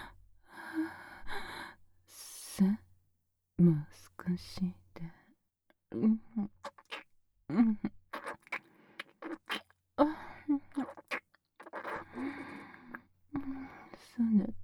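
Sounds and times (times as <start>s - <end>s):
speech: 2.6s - 2.8s, 3.6s - 5.2s, 5.9s - 6.6s, 7.5s - 8.0s
wet kissing lip smacks: 6.6s - 7.0s, 8.1s - 9.7s, 10.7s - 12.6s.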